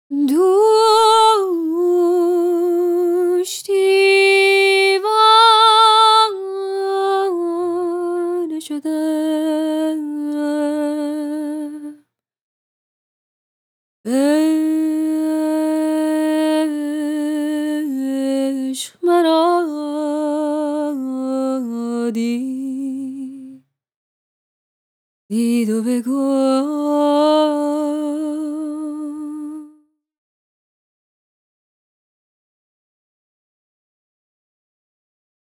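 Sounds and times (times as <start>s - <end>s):
dry female vocal: 0.1s - 12.0s, 14.1s - 23.6s, 25.3s - 29.9s.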